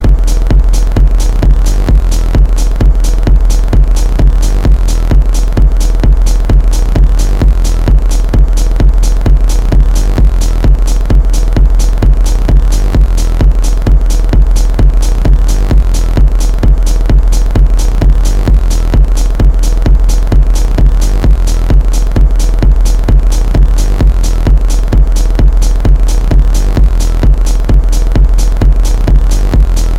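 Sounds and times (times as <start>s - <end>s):
beat: 0.0s - 29.9s.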